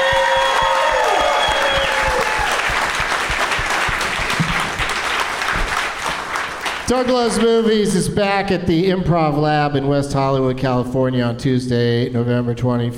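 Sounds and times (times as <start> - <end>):
faint whoops from live audience: 0.0 - 2.8
live audience applause: 0.0 - 7.4
speech: 6.9 - 12.9.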